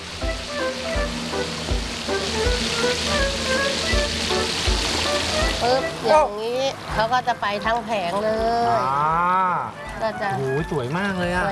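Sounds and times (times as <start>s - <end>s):
dull low thumps: 0.0s - 6.0s
fish frying in hot oil in a pan over very high heat: 0.0s - 6.0s
speech: 5.6s - 11.5s.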